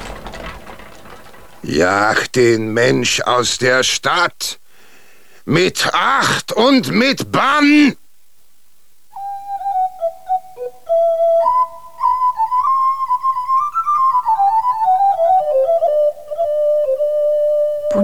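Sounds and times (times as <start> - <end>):
speech: 1.6 - 4.6, 5.5 - 8.0
piper's pipe playing a lilting whistled melody: 9.2 - 18.0.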